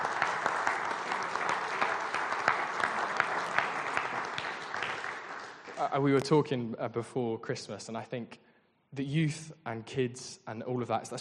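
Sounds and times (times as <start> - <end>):
audience applause: 0.0 - 6.2
speech: 5.8 - 11.1.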